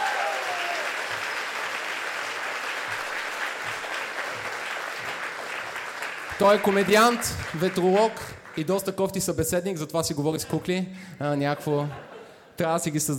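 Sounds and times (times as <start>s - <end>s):
audience applause at a comedy roast: 0.0s - 8.8s
speech: 6.4s - 13.1s
laughter: 10.2s - 12.6s.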